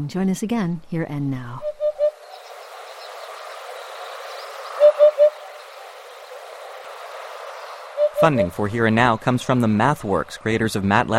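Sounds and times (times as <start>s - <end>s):
speech: 0.0s - 1.7s, 8.2s - 11.1s
hoopoe giving soft hollow three-note call: 1.6s - 8.9s
hiss of insects: 1.7s - 10.2s.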